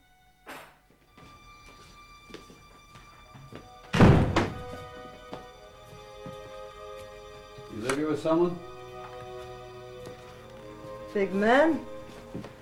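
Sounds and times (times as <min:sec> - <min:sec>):
door of a rundown flat opening: 0:03.8 - 0:05.0
heavy door of a rundown flat closing: 0:03.9 - 0:04.8
speech: 0:07.8 - 0:08.7, 0:11.1 - 0:12.6.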